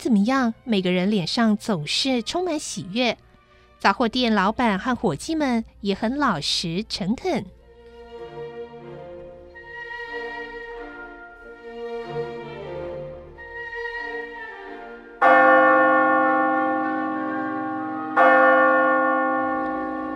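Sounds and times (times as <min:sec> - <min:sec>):
speech: 0:00.0 - 0:03.2, 0:03.8 - 0:07.6
church steeple bells pealing: 0:15.2 - 0:20.1.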